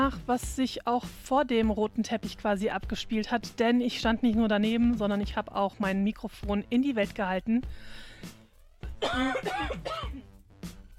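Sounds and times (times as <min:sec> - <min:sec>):
speech: 0:00.1 - 0:08.4, 0:09.0 - 0:10.3
person coughing: 0:09.0 - 0:10.3.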